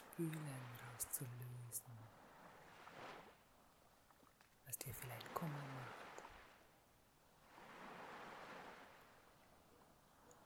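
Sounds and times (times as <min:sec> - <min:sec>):
ocean waves washing on shore: 0:00.0 - 0:03.4, 0:04.7 - 0:06.7, 0:07.4 - 0:09.3
speech: 0:00.2 - 0:02.2, 0:02.9 - 0:03.3, 0:04.7 - 0:06.2.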